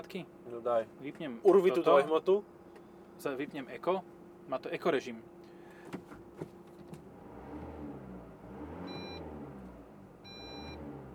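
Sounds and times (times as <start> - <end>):
speech: 0.0 - 2.6, 3.2 - 5.3
running car engine rumbling at an intersection in Bratislava: 5.9 - 11.1
car's faulty front parking sensor beeping: 8.8 - 9.4, 10.2 - 10.9.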